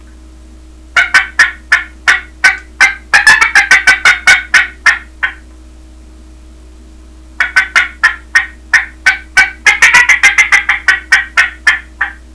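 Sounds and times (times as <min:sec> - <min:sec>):
turkey cackling: 0:01.0 - 0:05.5, 0:07.4 - 0:12.3.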